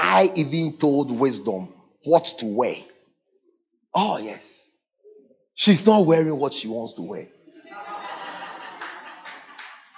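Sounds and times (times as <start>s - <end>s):
speech: 0.1s - 2.9s, 3.9s - 4.7s, 5.6s - 7.4s
laughter: 7.4s - 9.9s
audience clapping: 8.5s - 9.9s.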